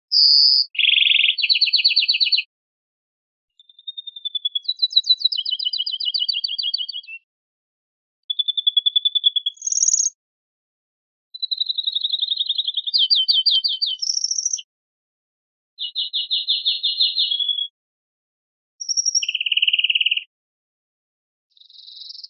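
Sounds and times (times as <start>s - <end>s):
greenfinch singing with canary-like phrases: 0.0s - 2.5s, 3.6s - 7.2s, 8.3s - 10.2s, 11.4s - 14.6s, 15.8s - 17.7s, 18.8s - 20.3s, 21.6s - 22.2s.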